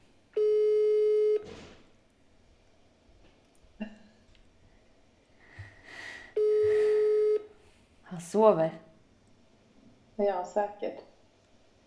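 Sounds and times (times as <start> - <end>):
ringback tones of an unanswered outgoing phone call: 0.4 - 1.4, 6.4 - 7.5
speech: 8.3 - 8.8, 10.2 - 11.1.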